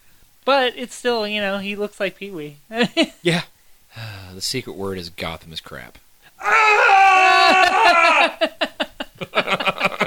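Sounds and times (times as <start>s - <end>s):
speech: 0.5s - 6.9s
person screaming high-pitched: 6.4s - 8.4s
laughter: 7.2s - 10.0s.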